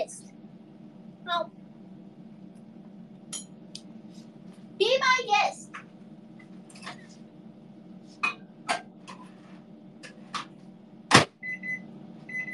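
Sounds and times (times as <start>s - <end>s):
microwave oven humming: 0.0s - 12.5s
speech: 1.3s - 1.6s.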